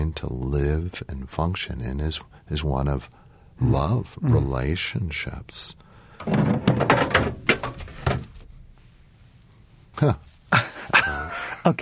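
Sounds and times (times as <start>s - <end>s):
speech: 0.1s - 7.4s, 10.0s - 10.6s
elk antler clattering as it tumbles off a shelf: 6.2s - 8.5s.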